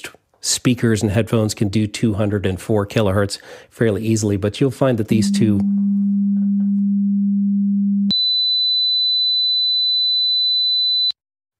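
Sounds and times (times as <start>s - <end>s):
speech: 0.0s - 6.8s
low steady test tone: 5.1s - 8.1s.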